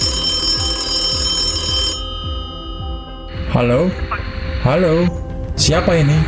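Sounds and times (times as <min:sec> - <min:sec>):
telephone bell ringing with metallic shimmer: 0:00.0 - 0:04.0
speech: 0:03.6 - 0:06.2.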